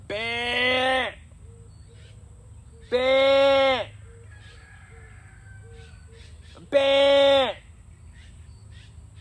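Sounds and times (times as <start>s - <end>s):
person imitating a goat bleat as a call: 0.0s - 1.2s, 2.9s - 4.0s, 6.6s - 7.6s.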